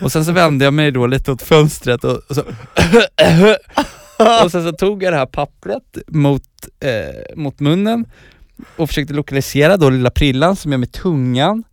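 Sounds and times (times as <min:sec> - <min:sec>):
speech: 0:00.0 - 0:11.7
person faking short voiced throaty coughs: 0:02.3 - 0:04.8.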